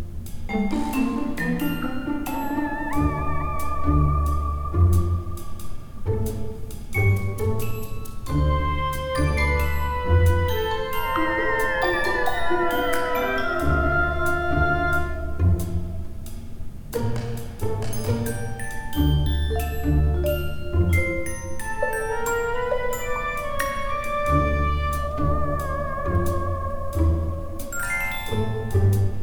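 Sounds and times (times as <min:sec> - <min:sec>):
game music loop: 0:00.4 - 0:06.3, 0:07.0 - 0:15.8, 0:17.6 - 0:29.0.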